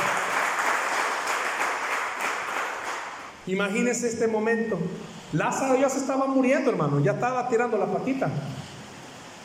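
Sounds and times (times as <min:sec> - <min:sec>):
audience applauding: 0:00.0 - 0:03.4
speech: 0:03.5 - 0:08.6.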